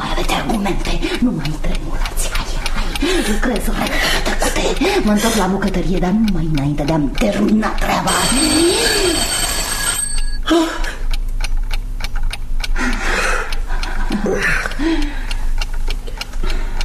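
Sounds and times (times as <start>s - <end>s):
clock ticking: 0.0s - 16.8s
speech: 0.4s - 2.4s, 3.0s - 9.3s
alarm clock ringing: 6.8s - 10.5s.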